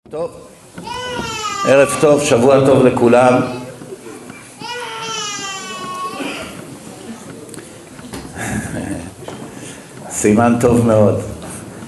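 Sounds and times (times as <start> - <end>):
speech: 0.1 - 0.9, 1.7 - 3.6, 10.2 - 11.4
murmuring room of people: 0.1 - 11.8
baby crying: 0.8 - 2.4, 4.6 - 6.6.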